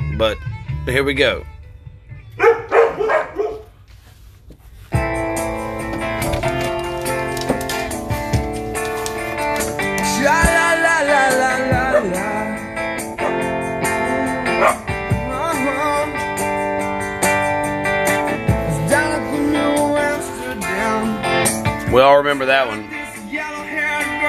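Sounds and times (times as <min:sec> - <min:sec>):
music: 0:00.0 - 0:04.0, 0:04.6 - 0:24.2
speech: 0:00.2 - 0:01.5, 0:22.0 - 0:22.8
several dogs barking sharply: 0:02.4 - 0:03.8, 0:11.8 - 0:12.3, 0:13.2 - 0:13.6, 0:14.3 - 0:15.0.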